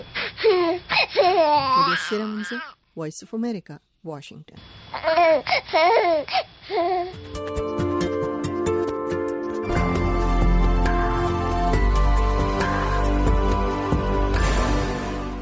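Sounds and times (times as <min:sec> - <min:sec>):
infant crying: 0:00.0 - 0:02.8, 0:04.9 - 0:07.2
speech: 0:01.0 - 0:07.7
steady music: 0:07.3 - 0:15.3.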